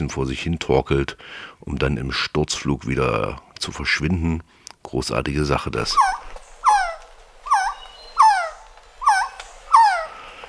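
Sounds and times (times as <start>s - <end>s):
speech: 0.0s - 6.2s
trogon calling with downward-slurring cries: 5.7s - 10.4s.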